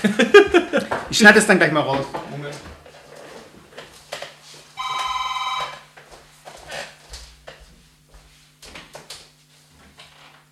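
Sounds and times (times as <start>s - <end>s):
laughter: 0.0s - 1.1s
speech: 1.1s - 2.8s
telephone ringing with bright electronic tone: 4.8s - 5.9s.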